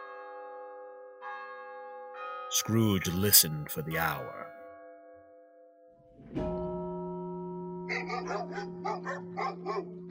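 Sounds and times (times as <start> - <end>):
church bell chiming the quarters: 0.0 - 10.1
speech: 2.5 - 4.6
dogs barking at night: 7.9 - 10.0.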